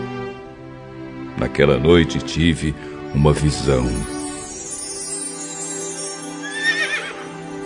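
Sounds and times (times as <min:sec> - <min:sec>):
speech: 0:01.4 - 0:04.2
horse neighing: 0:06.4 - 0:07.3.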